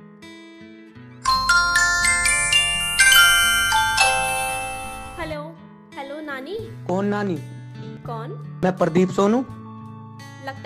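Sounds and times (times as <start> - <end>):
phone ringback tone as a bright electronic melody: 1.2 - 5.4
speech: 6.6 - 9.6, 10.4 - 10.6.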